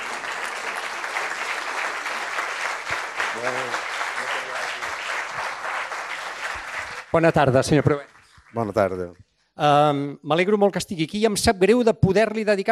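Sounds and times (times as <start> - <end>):
audience applause welcoming the composer on stage: 0.0 - 9.0
speech: 3.4 - 3.9, 7.1 - 12.7.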